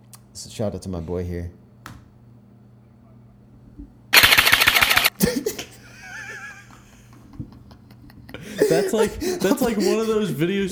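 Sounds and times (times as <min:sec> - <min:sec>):
speech: 0:00.4 - 0:01.6, 0:08.9 - 0:10.7
electronic airsoft gun firing a full-auto burst: 0:04.2 - 0:05.1
laughter: 0:05.2 - 0:10.5.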